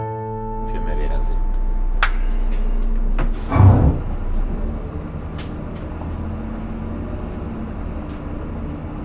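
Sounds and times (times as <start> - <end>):
privately owned bus engine rumbling and pulling away: 0.5 - 9.0.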